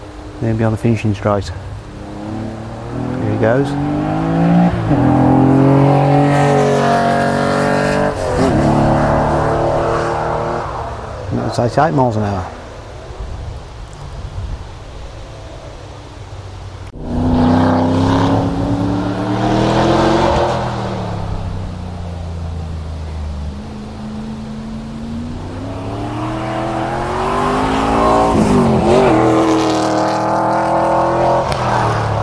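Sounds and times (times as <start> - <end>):
speech: 0.4 - 1.7, 3.4 - 4.0, 4.9 - 5.2, 11.5 - 12.6
MG sports car racing on a track: 1.7 - 11.4, 16.9 - 32.2.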